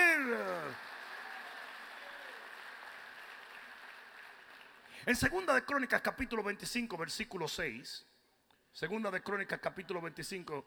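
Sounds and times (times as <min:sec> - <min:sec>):
a few people clapping in a church: 0:00.0 - 0:05.1
speech: 0:05.0 - 0:08.1, 0:08.7 - 0:10.6.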